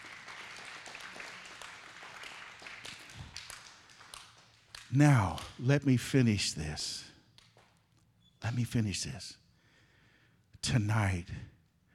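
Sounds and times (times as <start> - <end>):
crowd applause: 0.0 - 5.7
speech: 4.9 - 7.1, 8.4 - 9.4, 10.6 - 11.5.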